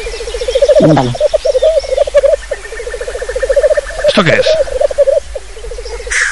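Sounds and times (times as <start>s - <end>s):
black grouse bubbling cooing call: 0.5s - 2.4s, 3.0s - 5.3s
speech: 0.8s - 1.3s, 4.2s - 4.8s.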